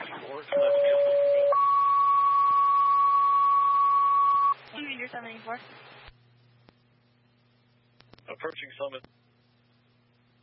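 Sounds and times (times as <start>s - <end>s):
low hum: 0.0s - 10.4s
long steady radio dispatch paging tone: 0.5s - 4.6s
speech: 5.2s - 6.0s, 8.4s - 9.2s.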